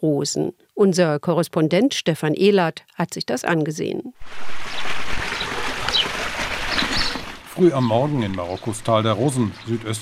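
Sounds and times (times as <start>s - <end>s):
speech: 0.0s - 6.0s, 7.6s - 10.0s
streams babbling through a cool valley in Morocco's Valley of Roses: 4.2s - 10.0s.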